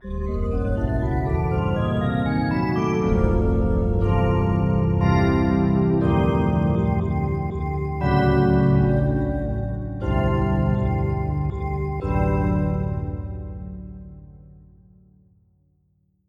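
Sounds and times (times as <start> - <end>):
digital octave synth pad: 0.1 - 12.2.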